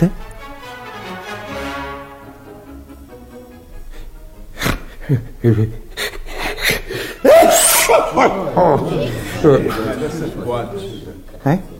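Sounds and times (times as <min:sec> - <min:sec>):
speech: 0:00.0 - 0:00.2, 0:05.1 - 0:05.8, 0:07.9 - 0:11.7
laughter: 0:04.8 - 0:11.7
man sneezing: 0:07.0 - 0:08.4.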